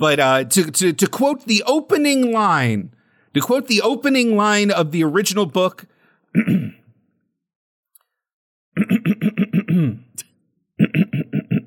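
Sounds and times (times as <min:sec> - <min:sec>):
speech: 0:00.0 - 0:06.8, 0:08.8 - 0:11.4
throat clearing: 0:06.3 - 0:07.1, 0:08.8 - 0:11.6.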